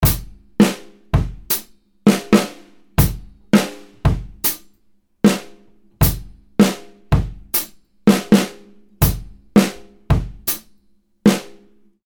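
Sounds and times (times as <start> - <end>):
drunken groove drum loop at 80 bpm: 0.0 - 4.6, 6.0 - 10.7.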